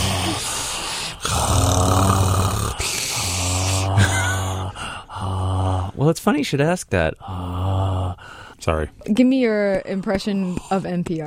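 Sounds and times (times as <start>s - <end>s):
person breathing heavily through the mouth: 0.0s - 1.8s, 2.6s - 5.5s, 7.2s - 8.6s
speech: 6.0s - 7.5s, 8.6s - 11.2s.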